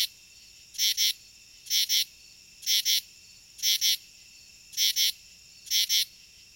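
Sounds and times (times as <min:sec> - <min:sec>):
male northern true katydid calling at night: 0:00.0 - 0:04.0, 0:04.7 - 0:06.2.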